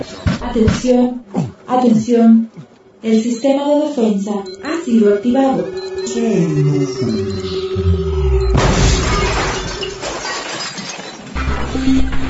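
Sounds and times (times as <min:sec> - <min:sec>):
speech: 0:00.5 - 0:07.5
falling electronic tones: 0:03.2 - 0:10.0
loud explosion destroying a command center: 0:08.4 - 0:09.7
crashing, shattering debris: 0:08.6 - 0:12.2.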